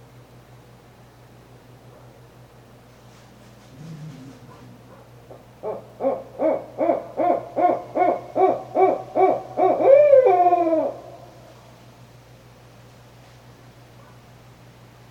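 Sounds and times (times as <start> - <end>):
Barred owl hooting ending in a long descending hoo-aaw: 3.7 - 11.4.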